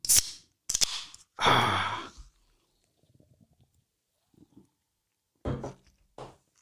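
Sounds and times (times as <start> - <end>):
bottle of cola opened with gas hissing: 0.0 - 1.1.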